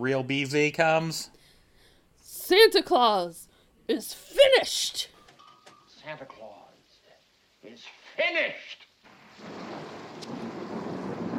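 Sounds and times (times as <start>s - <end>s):
speech: 0.0s - 1.4s, 2.5s - 5.1s, 6.0s - 6.6s, 7.6s - 8.8s
faint rain-like hiss: 5.9s - 11.3s
deep rumbling boom of thunder: 9.1s - 11.3s.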